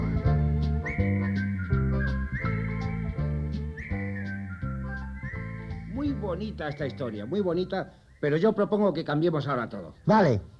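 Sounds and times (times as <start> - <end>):
person whistling a love song: 0.0 - 7.1
instrumental backing music: 0.0 - 7.7
speech: 6.3 - 10.5.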